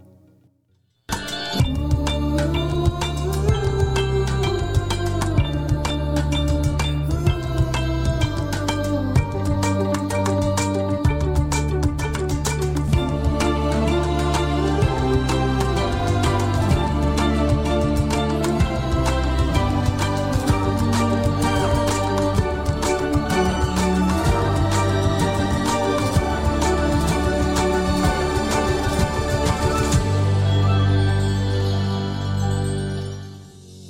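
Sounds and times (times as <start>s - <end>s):
layered melodic instruments: 1.1s - 33.8s
rhythmic percussion: 1.1s - 33.8s
steady driving bass: 1.1s - 33.8s.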